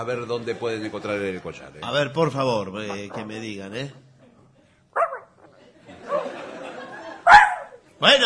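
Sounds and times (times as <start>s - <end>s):
laughter: 0.0s - 1.4s, 4.2s - 8.0s
speech: 0.0s - 4.1s, 8.0s - 8.2s
dog barking aboard a boat: 5.0s - 5.5s, 7.2s - 7.8s.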